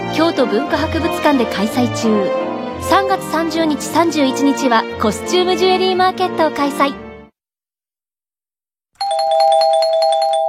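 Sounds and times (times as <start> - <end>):
speech: 0.2 - 7.0
electronic doorbell-like chime marking the close of radio quiz entries: 9.0 - 10.4.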